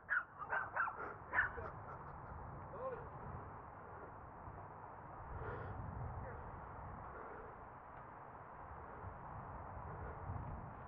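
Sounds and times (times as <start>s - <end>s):
small dog yipping: 0.0s - 1.6s
outdoor hum: 0.0s - 10.8s.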